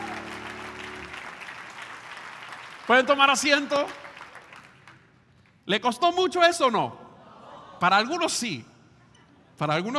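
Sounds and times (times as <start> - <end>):
congregation applauding at a religious service: 0.0 - 5.2
speech: 2.9 - 4.0, 5.6 - 7.0, 7.8 - 8.7, 9.6 - 9.9.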